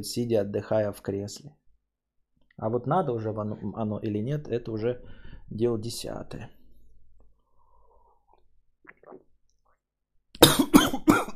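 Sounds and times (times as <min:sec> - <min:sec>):
speech: 0:00.0 - 0:01.6, 0:02.6 - 0:06.6
harsh throaty coughing after a drink went down the wrong way: 0:10.4 - 0:11.3.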